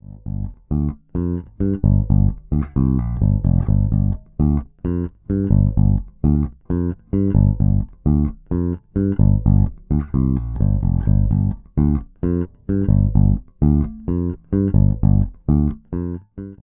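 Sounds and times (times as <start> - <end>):
Fodera Monarch Standard Special bass guitar on both pickups: 0.0 - 16.6.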